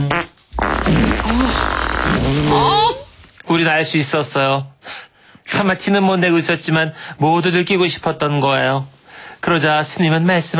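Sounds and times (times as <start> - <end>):
various farts: 0.0 - 2.9
speech: 3.6 - 5.0, 5.6 - 10.5.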